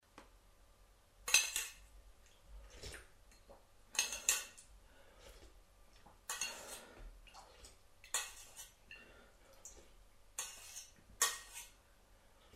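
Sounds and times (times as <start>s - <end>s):
person eating with metal: 1.2s - 11.8s.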